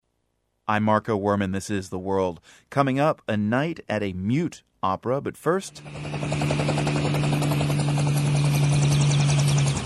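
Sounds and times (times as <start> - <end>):
speech: 0.7 - 6.8
helicopter rotor chop landing at a resort city on the French Riviera: 5.6 - 9.8.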